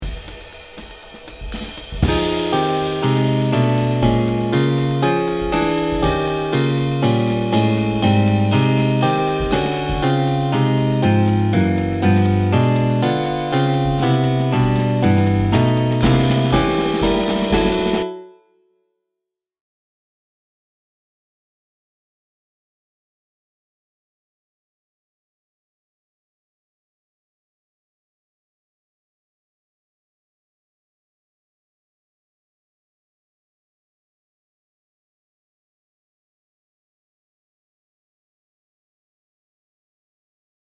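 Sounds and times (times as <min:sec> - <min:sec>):
walking bass line: 0:02.0 - 0:18.0.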